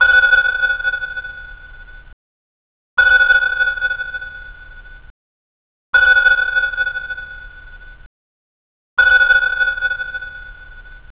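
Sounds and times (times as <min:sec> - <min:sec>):
submarine sonar pings: 0:00.0 - 0:02.2, 0:03.0 - 0:05.1, 0:06.0 - 0:08.1, 0:09.0 - 0:11.1.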